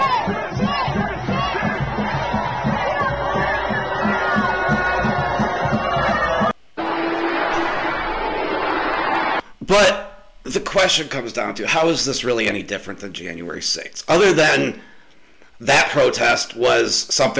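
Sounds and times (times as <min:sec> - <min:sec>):
large crowd of protesters screaming and shouting: 0:00.0 - 0:09.4
speech: 0:09.7 - 0:14.9, 0:15.6 - 0:17.3.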